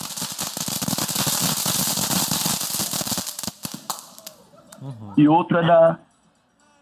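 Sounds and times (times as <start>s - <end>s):
cone-shaped volcano firework fountain hissing and crackling: 0.0s - 4.5s
speech: 4.8s - 6.1s.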